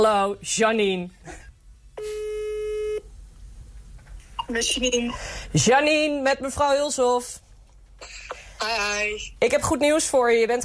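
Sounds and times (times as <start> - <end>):
speech: 0.0 - 1.4, 4.5 - 7.4, 8.0 - 10.6
faint noise: 0.0 - 10.6
steady electronic telephone tone from a school calling students: 2.0 - 3.0.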